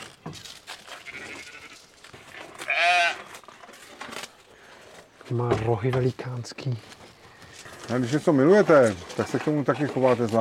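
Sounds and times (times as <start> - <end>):
soft rustling outdoor background: 0.0 - 10.3
speech: 0.2 - 0.6, 5.3 - 6.9, 7.9 - 10.3
billy goat bleating: 1.0 - 1.8, 2.6 - 3.3.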